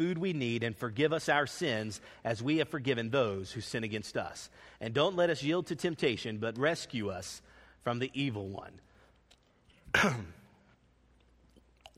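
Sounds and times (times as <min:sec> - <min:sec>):
speech: 0:00.0 - 0:08.9, 0:09.9 - 0:10.4
harsh throat-clearing cough from congestion in the back of the throat: 0:09.9 - 0:10.6.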